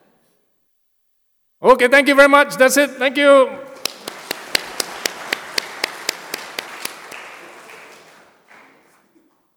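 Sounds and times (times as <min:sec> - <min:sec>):
speech: 0:01.6 - 0:03.7
sharp evenly spaced claps: 0:03.7 - 0:09.1
audience applause: 0:03.8 - 0:09.2.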